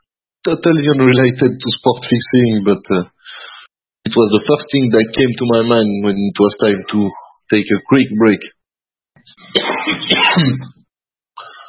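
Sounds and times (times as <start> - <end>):
speech: 0.4 - 8.6, 9.4 - 10.8
person coughing: 9.4 - 10.8
throat clearing: 9.4 - 10.8.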